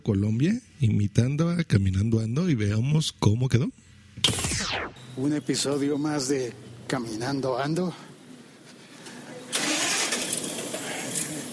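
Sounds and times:
speech: 0.0s - 8.1s
large engine starting and running: 9.5s - 11.5s.

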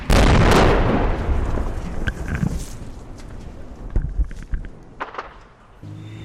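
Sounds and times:
heavy booming artillery explosion in a city: 0.0s - 2.1s
fainter blasts and pops echoing across an urban area: 0.0s - 5.8s.

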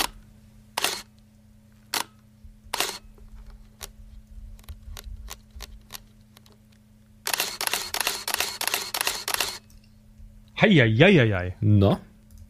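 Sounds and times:
steady low mechanical hum: 0.0s - 12.4s
1980s electric camera shutter snaps: 0.8s - 1.1s, 1.9s - 2.1s, 2.8s - 3.0s, 7.2s - 9.7s
rapid burst of motorized clicks from 1980s electric camera: 0.8s - 1.2s, 1.9s - 3.0s, 3.7s - 4.0s, 4.6s - 6.6s, 7.2s - 9.8s
speech: 10.6s - 12.1s.

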